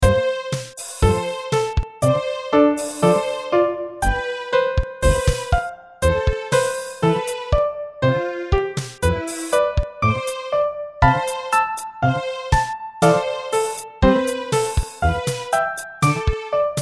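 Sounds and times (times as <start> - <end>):
MIDI music: 0.0 - 16.8.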